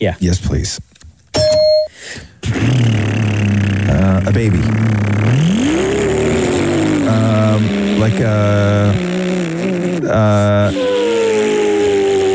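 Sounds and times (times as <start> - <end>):
speech: 0.0 - 1.0, 4.0 - 5.9, 7.1 - 9.2, 10.1 - 11.2
bright electronic ding signaling start of timer: 1.4 - 2.0
person making a buzzing revving engine noise with their mouth: 2.4 - 12.3
loud steady rumbling noise: 2.8 - 10.2.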